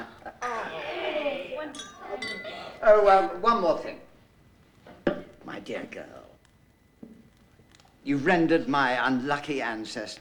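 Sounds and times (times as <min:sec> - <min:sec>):
glasses clinking together in a toast: 0:01.7 - 0:02.7
speech: 0:02.8 - 0:04.0, 0:05.6 - 0:06.2, 0:08.0 - 0:10.1.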